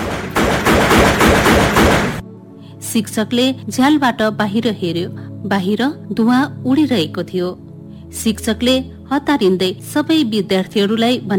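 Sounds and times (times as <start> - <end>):
rapid gunfire volley: 0.0 - 2.2
speech: 2.9 - 11.3.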